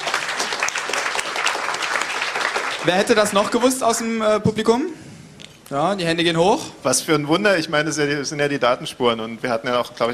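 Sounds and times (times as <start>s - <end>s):
audience applause at a live talk: 0.0s - 3.9s
speech: 2.8s - 5.0s, 5.7s - 10.1s.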